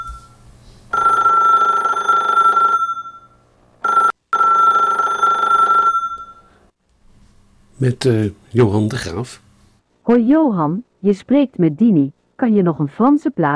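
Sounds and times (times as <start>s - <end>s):
telephone ringing with bright electronic tone: 0.0s - 6.6s
speech: 7.8s - 9.4s, 10.1s - 13.5s.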